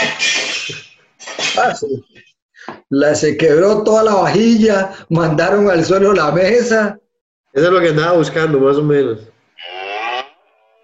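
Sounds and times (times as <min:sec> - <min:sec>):
speech: 0:01.6 - 0:09.8
cow mooing: 0:09.6 - 0:10.8.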